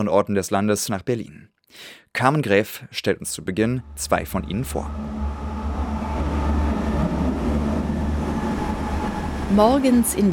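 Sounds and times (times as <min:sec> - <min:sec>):
speech: 0:00.0 - 0:05.5, 0:09.5 - 0:10.3
subway train rumbling past with metallic rattling and hiss: 0:03.6 - 0:10.3.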